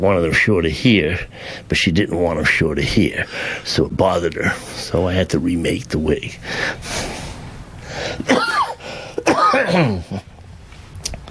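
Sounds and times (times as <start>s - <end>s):
speech: 0.0s - 7.1s, 9.6s - 10.3s
person clearing throat: 8.2s - 10.3s
person coughing: 8.2s - 10.3s.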